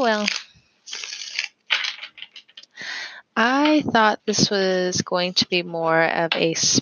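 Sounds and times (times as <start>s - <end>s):
speech: 0.0s - 0.4s, 3.4s - 6.8s
shuffling a deck of oracle cards: 0.1s - 2.8s.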